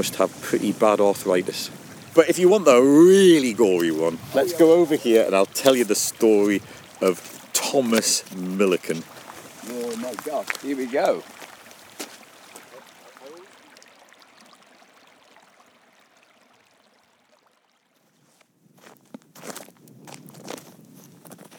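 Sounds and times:
speech: 0:00.0 - 0:11.4
footsteps crunching on outdoor ground at an old mine site: 0:00.0 - 0:13.4, 0:18.0 - 0:21.5.

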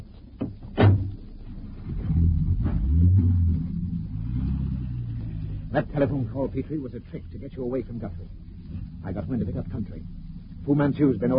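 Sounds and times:
car door thudding shut: 0:00.4 - 0:01.1
car engine revving as the car pulls away in pursuit of another car: 0:00.7 - 0:11.3
speech: 0:05.8 - 0:11.3.

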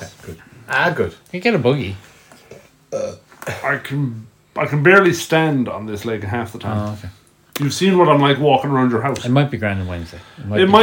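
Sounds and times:
speech: 0:00.7 - 0:02.1, 0:02.9 - 0:10.8
short throaty burp: 0:02.9 - 0:03.6.

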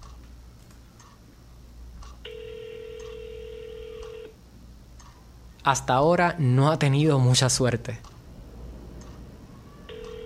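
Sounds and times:
telephone tone while an office extension at an agency is called: 0:02.2 - 0:04.4, 0:09.9 - 0:10.2
speech: 0:05.6 - 0:08.1.

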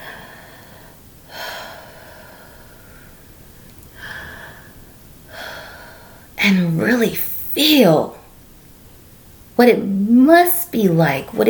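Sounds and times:
deep breaths: 0:00.0 - 0:06.4
faint steady hiss: 0:00.0 - 0:11.4
speech: 0:06.4 - 0:08.2, 0:09.6 - 0:11.4.

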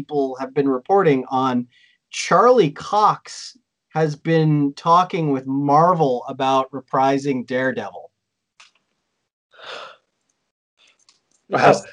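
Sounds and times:
speech: 0:00.0 - 0:08.1, 0:11.5 - 0:11.9
person yawning: 0:09.6 - 0:09.9.

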